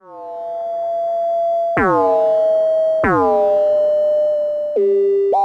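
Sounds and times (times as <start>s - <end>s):
analog synth through delay mod module: 0.0s - 5.3s.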